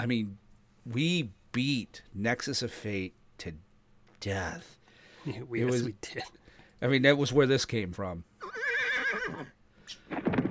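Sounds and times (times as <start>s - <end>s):
speech: 0.0s - 3.6s, 4.2s - 8.6s, 9.3s - 10.4s
horse neighing: 8.4s - 9.6s.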